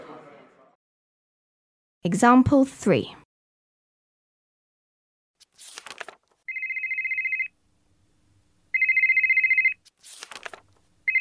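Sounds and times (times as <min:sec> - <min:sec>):
speech: 0:02.0 - 0:03.2
mobile phone ringtone with trilling electronic tone: 0:06.5 - 0:07.6, 0:08.7 - 0:09.8.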